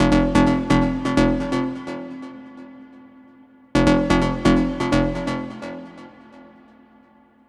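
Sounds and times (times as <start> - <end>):
melodic techno loop in F at 128 bpm: 0.0 - 2.2, 3.8 - 6.0.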